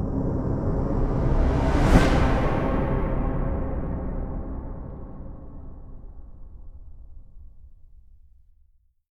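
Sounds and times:
sci-fi orchestral trailer whoosh transition: 0:00.1 - 0:06.7.

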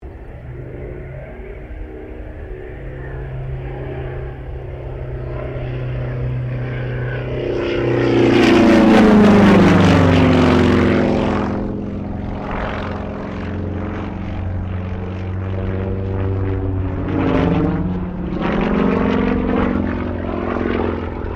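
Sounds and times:
Sukhoi Su-26M aerobatic airplane passing: 0:00.0 - 0:21.3.

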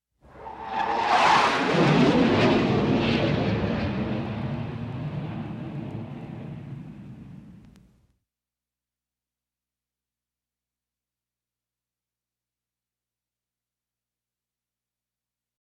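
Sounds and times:
jet flying by: 0:00.2 - 0:07.8.

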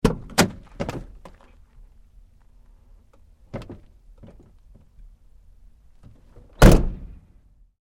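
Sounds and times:
2010 GMC Savana van door opening and closing hard: 0:00.0 - 0:01.5, 0:03.4 - 0:05.0, 0:06.0 - 0:07.2.

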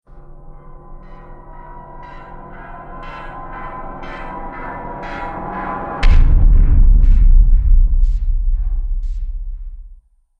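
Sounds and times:
sinister horror impact: 0:05.8 - 0:10.0.

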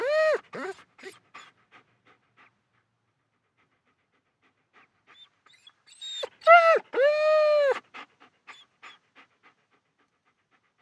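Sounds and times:
German Shepherd dog whining: 0:00.0 - 0:01.5, 0:05.1 - 0:07.8.

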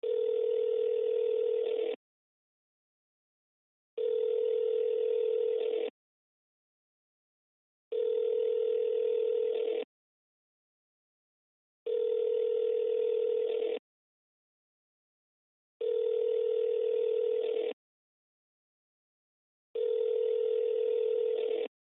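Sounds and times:
cell phone ringing: 0:00.0 - 0:02.0, 0:04.0 - 0:05.9, 0:07.9 - 0:09.9, 0:11.9 - 0:13.8, 0:15.8 - 0:17.8, 0:19.8 - 0:21.7.

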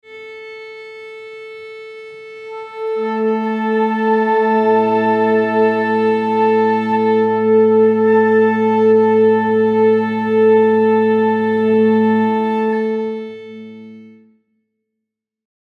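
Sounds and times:
orchestra flute section tuning to concert A: 0:02.5 - 0:14.1.

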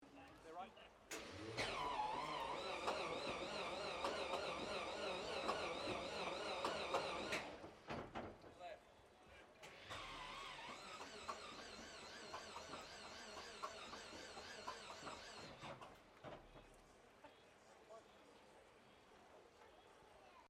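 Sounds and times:
twin engine Lockheed Hudson light bomber pre start: 0:01.1 - 0:08.0, 0:09.6 - 0:15.9.

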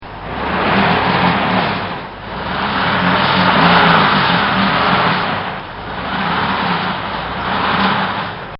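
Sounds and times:
car stuck on ice: 0:00.0 - 0:08.5.

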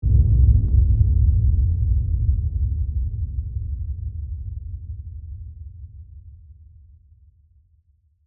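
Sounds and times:
horror hit LFE rumble with scary tone: 0:00.0 - 0:05.9.

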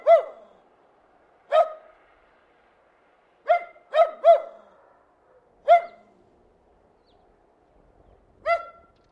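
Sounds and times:
terrier giving sharp yappy barks: 0:00.0 - 0:00.5, 0:03.5 - 0:06.1, 0:08.4 - 0:09.0.

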